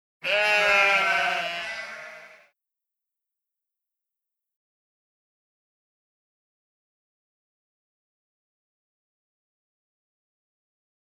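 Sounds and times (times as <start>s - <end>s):
sheep baaing: 0.2s - 2.5s.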